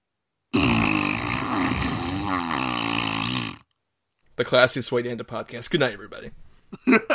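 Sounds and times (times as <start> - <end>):
long buzzing fart: 0.5 - 3.8
speech: 4.4 - 7.0.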